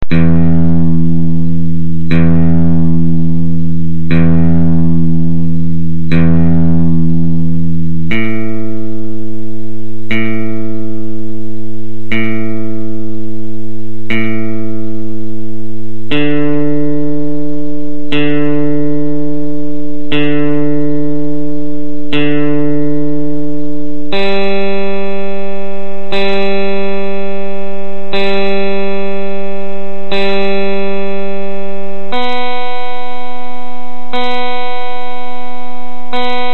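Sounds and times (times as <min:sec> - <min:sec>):
instrument tuning: 0:00.0 - 0:36.5.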